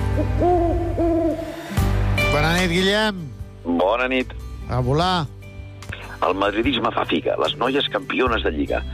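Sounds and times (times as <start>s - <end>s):
owl hooting: 0.1s - 1.6s
speech: 0.2s - 1.5s, 2.4s - 5.3s, 6.2s - 8.9s.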